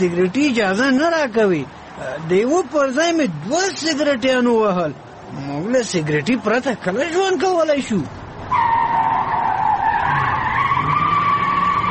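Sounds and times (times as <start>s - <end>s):
speech: 0.0s - 8.2s
car tires squealing as a car is driven fast and skids: 8.4s - 11.8s.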